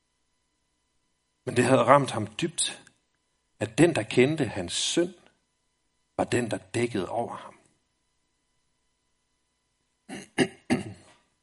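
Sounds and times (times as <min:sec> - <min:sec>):
speech: 0:01.5 - 0:02.8, 0:03.6 - 0:05.2, 0:06.2 - 0:07.6, 0:10.1 - 0:10.6
person clearing throat: 0:10.1 - 0:11.3.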